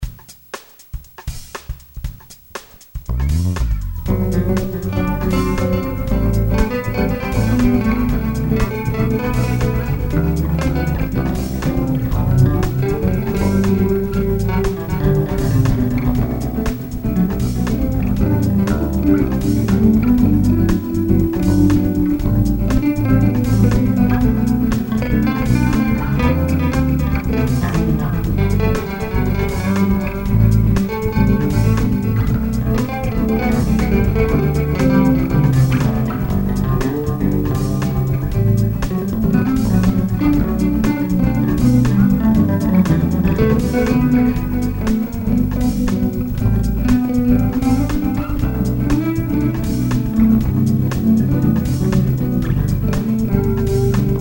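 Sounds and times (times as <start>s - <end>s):
bass guitar popping: 3.0s - 54.1s.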